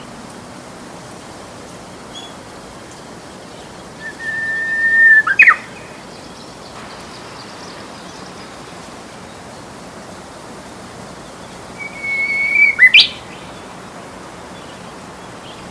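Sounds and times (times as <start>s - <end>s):
soft background hiss: 0.0s - 15.6s
Japanese bush warbler song: 2.1s - 2.4s, 4.0s - 8.5s, 11.8s - 13.6s.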